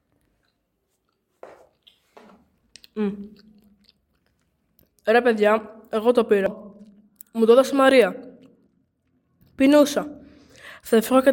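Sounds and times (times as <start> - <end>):
voice imitating crunchy chewing of someone eating in a school classroom: 2.7 - 5.0
speech: 3.0 - 3.5, 5.1 - 6.6, 7.4 - 8.2, 9.6 - 10.2, 10.8 - 11.3.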